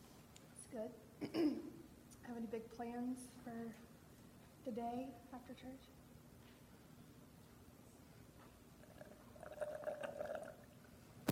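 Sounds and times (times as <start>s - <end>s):
speech: 0.7s - 3.9s, 4.6s - 6.0s
person drinking water in sips and gulps: 8.8s - 11.3s.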